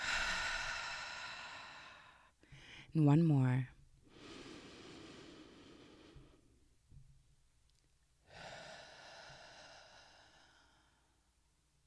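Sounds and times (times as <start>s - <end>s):
deep breath during a guided breathing exercise: 0.0s - 2.9s, 4.0s - 6.6s, 8.2s - 11.4s
speech: 2.9s - 3.8s.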